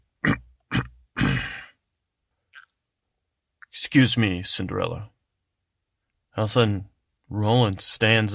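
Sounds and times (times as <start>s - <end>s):
gruff gravelly throat clearing: 0.2s - 1.7s
speech: 3.8s - 5.2s, 6.4s - 8.3s.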